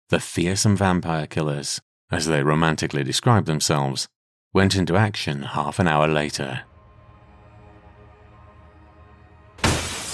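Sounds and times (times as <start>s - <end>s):
speech: 0.1s - 6.7s
broken glass shards ringing and scattering: 9.6s - 10.1s
glass shattering: 9.6s - 10.1s.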